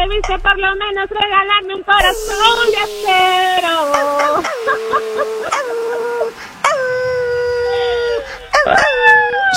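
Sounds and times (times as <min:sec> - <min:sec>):
speech: 0:00.1 - 0:04.5
dog howling sound effect: 0:05.4 - 0:09.5.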